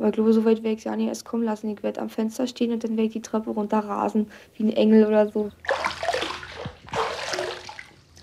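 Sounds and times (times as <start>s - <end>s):
speech: 0.0s - 6.0s
water splashing and sloshing in a bathtub: 5.5s - 8.2s.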